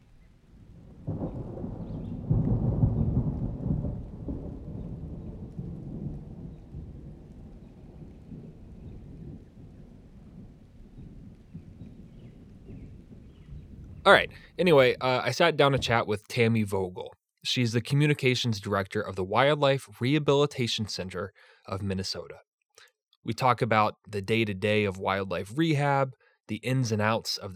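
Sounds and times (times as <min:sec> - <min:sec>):
steady rain: 0:00.0 - 0:16.0
thunder rumbling: 0:00.0 - 0:16.8
speech: 0:14.1 - 0:22.5, 0:23.2 - 0:27.5.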